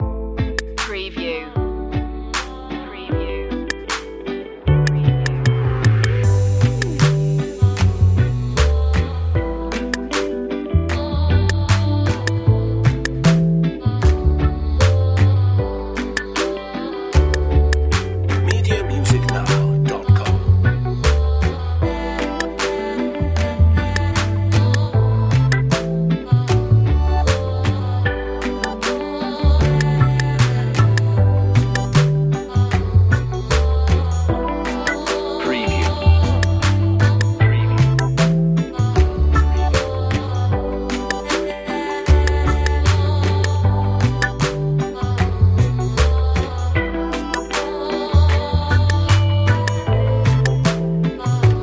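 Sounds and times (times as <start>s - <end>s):
indie stylish vocals: 0.8s - 51.6s
warm groovy chillout electro track: 2.2s - 15.3s, 16.0s - 51.6s.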